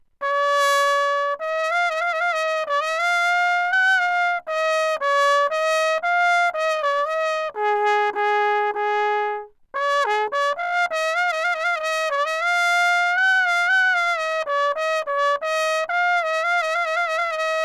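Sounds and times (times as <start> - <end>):
trumpet in an anechoic room: 0.2 - 17.6.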